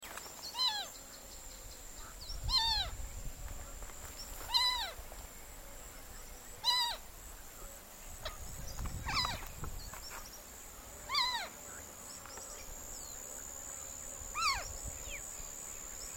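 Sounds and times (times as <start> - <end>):
pollona celeste calling: 0.4 - 1.1, 2.0 - 3.0, 4.3 - 5.0, 6.0 - 7.1, 8.2 - 10.3, 11.0 - 11.6, 14.3 - 15.3.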